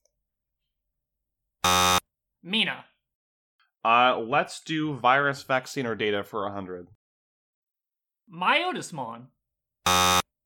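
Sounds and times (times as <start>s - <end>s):
game show buzzer during a quiz game: 1.6s - 2.0s, 9.8s - 10.3s
speech: 2.4s - 2.9s, 3.8s - 7.0s, 8.3s - 10.2s.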